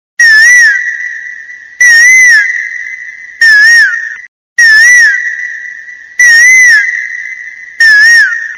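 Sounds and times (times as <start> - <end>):
Asian koel call: 0.2 - 8.5.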